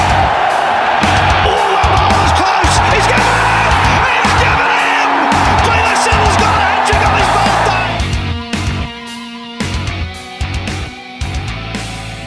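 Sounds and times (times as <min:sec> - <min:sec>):
steady thumping beat: 0:00.0 - 0:09.0
big stadium crowd cheering: 0:00.0 - 0:09.1
music: 0:00.0 - 0:12.2.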